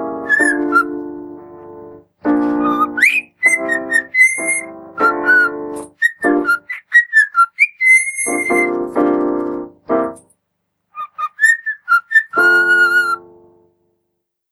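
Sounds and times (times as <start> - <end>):
cockatiel song of bright whistled notes and raspy buzzy passages: 0.3 - 1.0, 2.4 - 8.8, 11.0 - 13.2.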